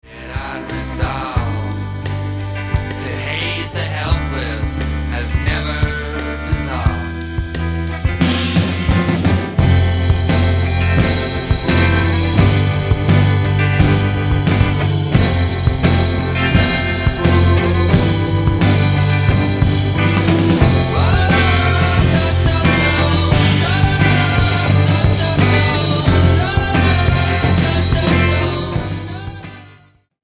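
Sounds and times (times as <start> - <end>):
drum: 0.3 - 29.6.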